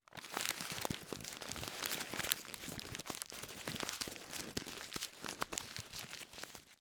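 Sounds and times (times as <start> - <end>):
paper crumpling: 0.0 - 6.7.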